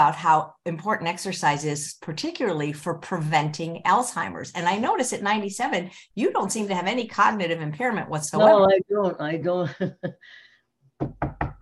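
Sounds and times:
speech: 0.0 - 10.4, 11.0 - 11.4
laughter: 8.4 - 10.3
knuckles knocking on wood: 11.0 - 11.6.

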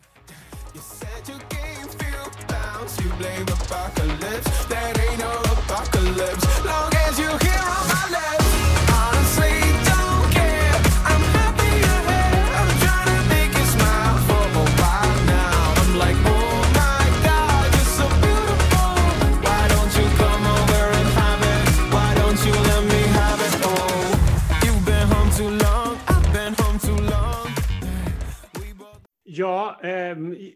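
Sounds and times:
synths: 0.0 - 28.5
male vocals in a hip-hop R&B pop song: 0.3 - 30.5
steady bass: 0.6 - 28.4
thumping hip-hop beat: 0.6 - 28.8
speech: 2.8 - 6.9, 29.4 - 30.5.

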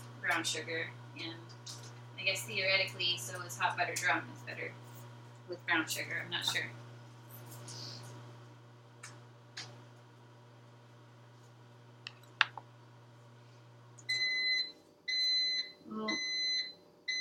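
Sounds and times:
speech: 0.4 - 4.9, 5.5 - 6.8
smoke alarm sounding a false alarm: 14.1 - 17.2.

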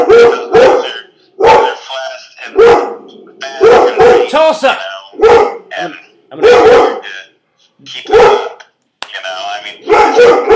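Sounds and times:
pet dog barking: 0.0 - 1.9, 2.5 - 4.4, 5.2 - 5.8, 6.4 - 7.2, 8.0 - 8.6, 9.8 - 10.5
speech: 0.2 - 0.5, 4.4 - 6.8, 7.8 - 8.1.

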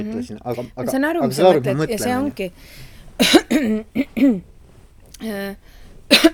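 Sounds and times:
speech: 0.0 - 4.5, 5.2 - 6.3
person clearing throat: 3.2 - 4.4, 6.1 - 6.3
person coughing: 3.2 - 4.4, 6.1 - 6.3.

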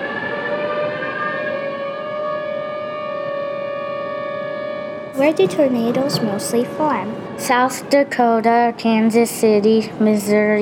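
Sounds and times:
tornado warning siren wailing: 0.0 - 8.4
speech: 5.2 - 10.6.

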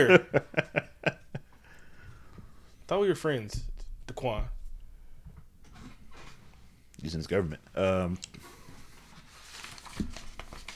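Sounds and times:
speech: 0.0 - 0.7, 2.9 - 4.6, 7.0 - 8.5
laughter: 0.0 - 1.5
pages being turned: 9.1 - 10.7.

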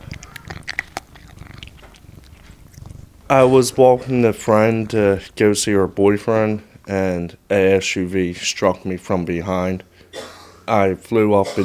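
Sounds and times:
female kitten making short high chirping mews: 0.0 - 3.0
speech: 3.3 - 11.6.

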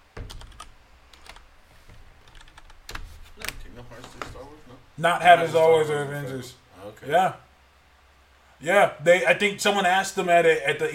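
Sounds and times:
low steady noise: 0.0 - 10.9
typing on a computer keyboard: 0.2 - 1.4, 2.2 - 3.0
speech: 3.9 - 7.4, 8.6 - 10.9.

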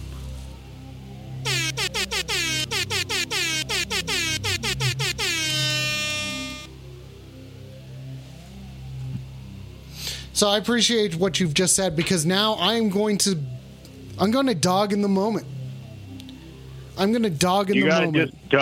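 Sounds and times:
truck air horn sounding as a salute: 1.5 - 6.7
speech: 10.4 - 13.6, 14.2 - 15.6, 17.0 - 18.6.

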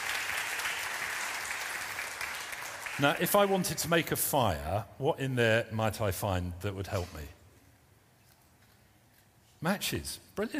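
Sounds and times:
crowd clapping: 0.0 - 3.8
speech: 3.0 - 7.4, 9.6 - 10.5.

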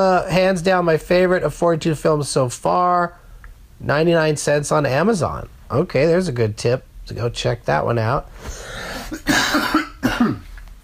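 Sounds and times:
speech: 0.0 - 3.2, 3.8 - 10.4
person coughing harshly: 8.8 - 10.5.

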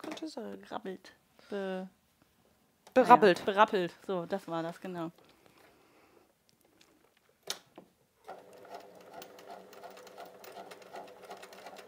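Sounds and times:
speech: 0.2 - 2.0, 2.9 - 5.3
sewing machine clicks: 8.3 - 11.8.

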